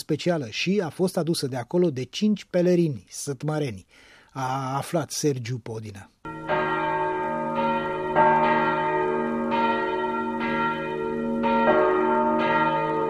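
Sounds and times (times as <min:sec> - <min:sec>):
speech: 0:00.1 - 0:06.2
church bells pealing: 0:06.3 - 0:13.0.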